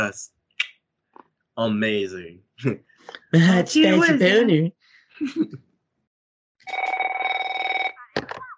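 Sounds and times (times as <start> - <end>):
speech: 0.0 - 0.4, 1.6 - 5.7
telephone ringing with electronic trill: 6.6 - 8.1.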